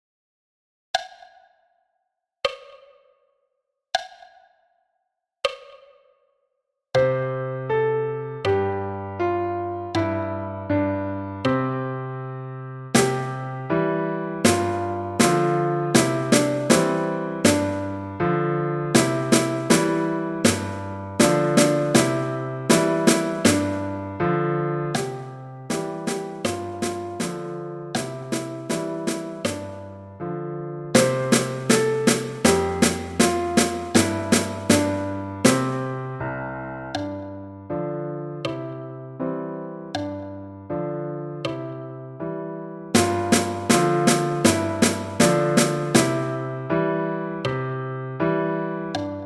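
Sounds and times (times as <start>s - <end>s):
piano: 7.0s - 49.2s
snare drum: 13.0s - 13.7s, 14.5s - 18.0s, 19.0s - 24.0s, 25.0s - 29.8s, 31.0s - 36.0s, 43.0s - 46.7s.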